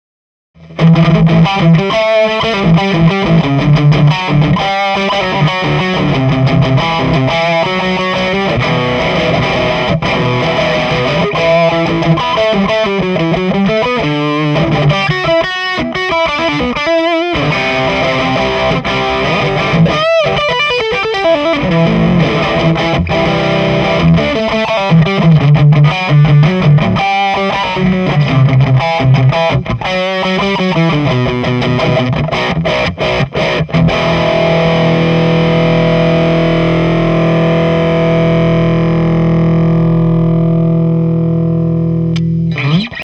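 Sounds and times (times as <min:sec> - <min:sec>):
tele bridge pickup distortion: 0:00.6 - 0:43.0.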